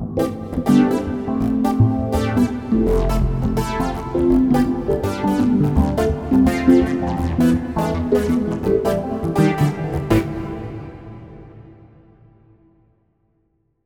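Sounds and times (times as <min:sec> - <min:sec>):
cathedral synth groove: 0:00.2 - 0:11.9.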